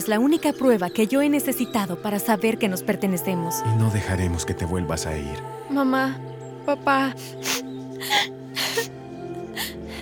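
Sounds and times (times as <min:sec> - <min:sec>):
speech: 0:00.0 - 0:08.4
tearful sobbing with breathy gasps and whimpering: 0:07.4 - 0:09.0.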